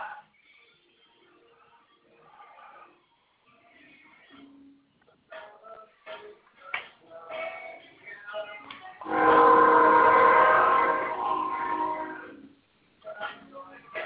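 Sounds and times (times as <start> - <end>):
train horn blaring: 9.0 - 12.4.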